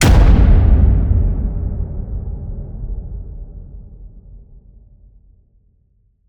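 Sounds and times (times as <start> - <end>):
designed cinematic hit slam: 0.0 - 4.2.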